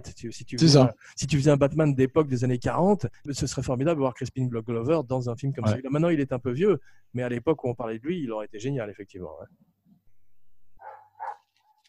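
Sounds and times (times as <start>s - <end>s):
speech: 0.0s - 9.7s
neighbour's dog barking: 10.8s - 11.8s.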